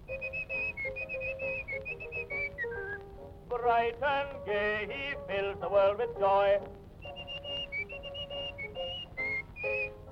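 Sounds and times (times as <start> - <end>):
faint hiss: 0.0 - 10.1
soft instrumental backing: 0.0 - 10.1
person whistling a lively melody: 0.1 - 3.0, 7.0 - 10.0
speech: 3.6 - 6.8.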